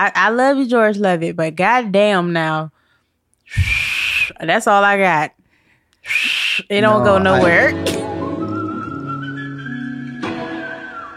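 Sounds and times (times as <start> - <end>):
speech: 0.0 - 2.8, 3.5 - 5.4, 6.0 - 8.0
man whistling a slow melody: 6.1 - 6.6, 7.9 - 11.1.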